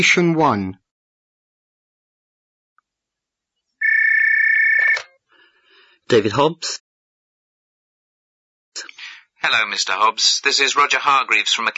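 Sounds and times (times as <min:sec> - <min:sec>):
speech: 0:00.0 - 0:00.8, 0:06.1 - 0:06.8, 0:08.8 - 0:11.7
electronic telephone ring with warbling tone: 0:03.8 - 0:05.2
click of telephone receiver being picked up: 0:04.8 - 0:05.1.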